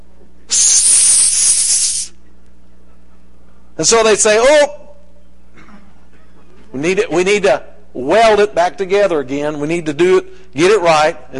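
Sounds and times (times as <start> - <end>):
steam hissing from a pressurized pipe during a pressure test: 0.5 - 2.1
speech: 3.8 - 4.8, 6.8 - 11.3.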